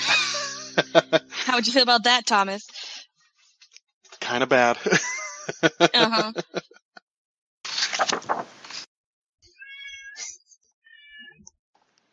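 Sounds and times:
laughter: 0:00.0 - 0:01.8, 0:04.3 - 0:06.8
speech: 0:01.6 - 0:02.7, 0:04.3 - 0:06.8
cat meowing loudly: 0:09.6 - 0:10.2.

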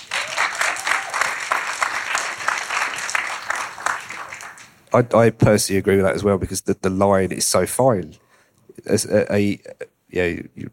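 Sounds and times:
crowd clapping: 0:00.0 - 0:04.9
speech: 0:04.9 - 0:08.2, 0:08.8 - 0:10.7.

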